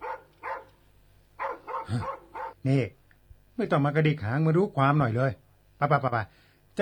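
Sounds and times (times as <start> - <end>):
dog barking: 0.0 - 0.8, 1.4 - 2.6
speech: 1.9 - 3.0, 3.6 - 6.8.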